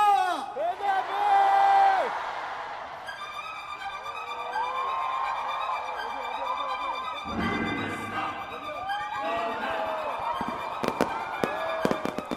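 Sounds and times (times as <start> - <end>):
festival crowd whooping and cheering: 0.0 - 12.3
music at rock music festival: 2.9 - 12.3
fireworks bursting at rock music festival opening ceremony: 10.4 - 12.3.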